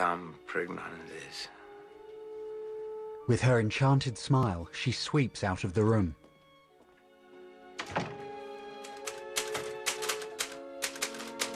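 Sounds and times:
speech: 0.0 - 1.6, 3.3 - 6.2
sustained music tones: 0.0 - 11.5
typewriter keystrikes on a machine with a badly fading ribbon: 8.8 - 11.5.

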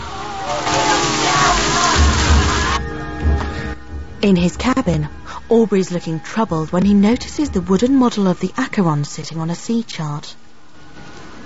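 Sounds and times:
water splashing and sloshing as men wash and throw water on a ship's deck: 0.0 - 8.8
low thumps: 0.9 - 8.4
speech: 4.2 - 10.4.

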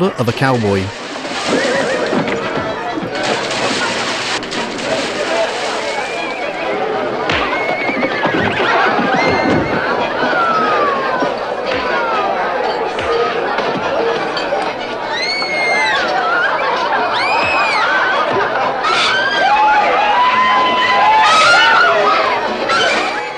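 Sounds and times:
speech: 0.0 - 1.6
busy background of voices and bustle: 0.0 - 23.3
horse neighing with rising and falling whinnies: 1.3 - 2.4.

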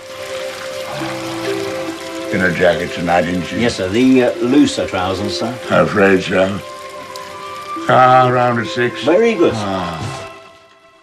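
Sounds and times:
bath water sloshing as a man wallows in the tub: 0.0 - 7.9
speech: 2.3 - 6.7, 7.9 - 10.2.

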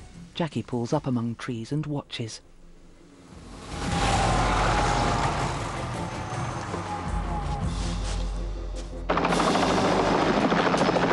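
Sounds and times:
speech: 0.4 - 2.5
helicopters landing among snowy trees: 3.5 - 8.1, 9.1 - 11.1.

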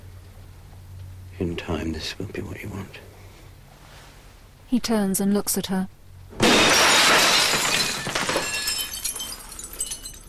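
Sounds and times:
speech: 1.4 - 3.1, 4.7 - 6.4
glass of an office door in a hospital smashing: 6.4 - 10.2
scattered glass pieces tinkling and clinking as they fall: 6.4 - 10.2.

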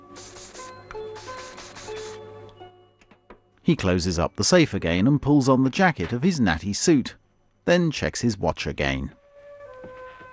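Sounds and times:
perfume sprayed from a bottle under each armpit and into the mouth: 0.0 - 2.3
speech: 3.7 - 9.2.

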